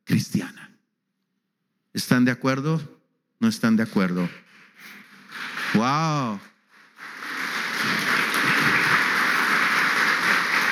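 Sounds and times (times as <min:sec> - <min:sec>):
speech: 0:02.0 - 0:05.0, 0:05.8 - 0:06.5
audience applause: 0:05.3 - 0:10.7.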